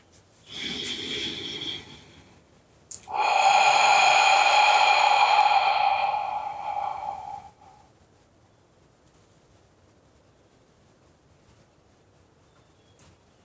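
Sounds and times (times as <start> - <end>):
long exhale through the mouth with faint whistling tone: 0.5 - 2.3, 3.0 - 7.8
breathing in through the nose and out through the mouth: 0.5 - 7.8.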